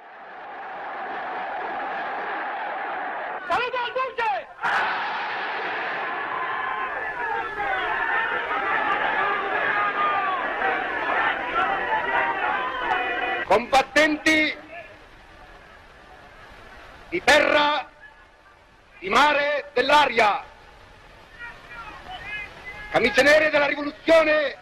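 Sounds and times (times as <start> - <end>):
crowd shouting chant-like cries in Piazza Venezia, Rome: 0.0 - 13.5
huge outdoor crowd cheering in Piazza Venezia, Rome: 0.0 - 18.6, 21.3 - 24.6
speech: 19.0 - 20.4, 22.9 - 24.6.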